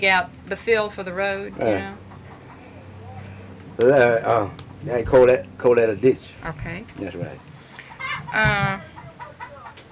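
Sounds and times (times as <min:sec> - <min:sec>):
speech: 0:00.0 - 0:02.1, 0:03.8 - 0:07.5, 0:08.3 - 0:08.9
chickens clucking: 0:00.5 - 0:05.3, 0:06.0 - 0:09.9
loud drawn-out chicken squawk: 0:01.4 - 0:03.3, 0:07.4 - 0:09.9.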